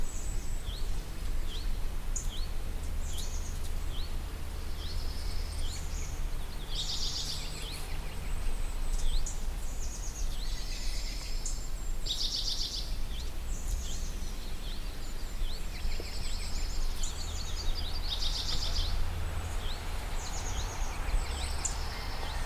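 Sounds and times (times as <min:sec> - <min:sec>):
chorus of many wild birds singing outdoors: 0:00.0 - 0:22.4
steady low rumble of noise: 0:00.0 - 0:22.4.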